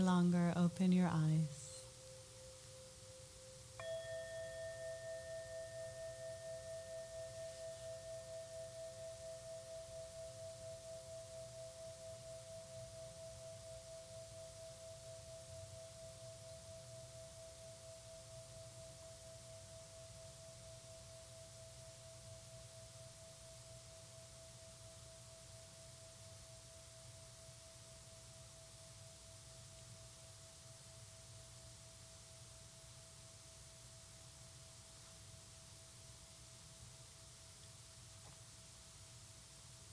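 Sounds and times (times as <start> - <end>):
speech: 0.0 - 1.6
soft hiss: 0.0 - 39.9
meditation bell struck and ringing: 1.3 - 29.4.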